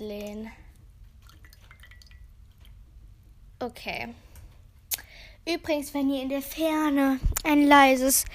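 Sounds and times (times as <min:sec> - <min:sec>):
low steady hum: 0:00.0 - 0:08.3
tea bag lifted out of cup, dripping into liquid: 0:01.1 - 0:02.8
speech: 0:03.6 - 0:04.2, 0:05.4 - 0:08.3.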